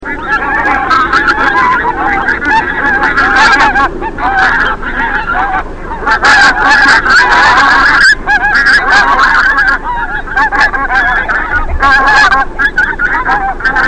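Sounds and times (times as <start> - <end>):
goose: 0.0 - 13.8.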